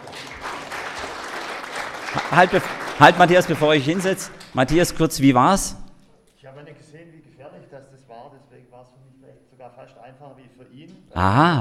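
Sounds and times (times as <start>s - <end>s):
audience applause at a live stage event: 0.0s - 4.7s
speech: 2.2s - 5.8s, 9.6s - 11.6s.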